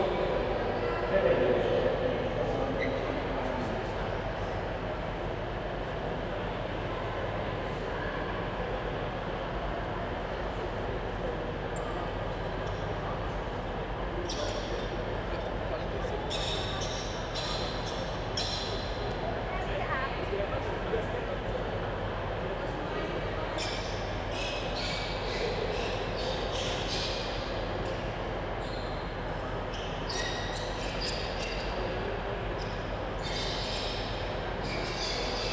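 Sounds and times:
dense murmur of voices in a train station hall: 0:00.0 - 0:35.5.

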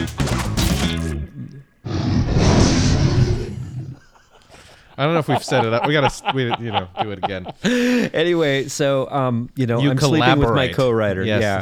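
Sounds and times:
dragon roar sound effect: 0:00.6 - 0:04.0
laughter: 0:03.5 - 0:08.6
speech: 0:05.0 - 0:11.6.

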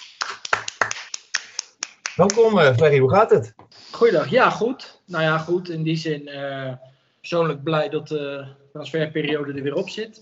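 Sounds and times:
small group applauding with scattered hand claps: 0:00.0 - 0:02.7
speech: 0:02.2 - 0:10.2.

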